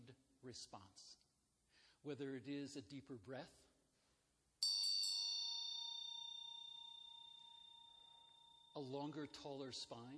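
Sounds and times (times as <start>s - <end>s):
speech: 0.4s - 1.2s, 2.0s - 3.7s, 8.8s - 10.1s
single metallic bell strike ringing: 4.6s - 10.1s.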